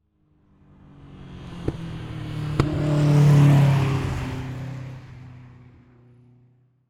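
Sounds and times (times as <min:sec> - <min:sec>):
race car driving by slowly through a turn: 0:00.8 - 0:06.3.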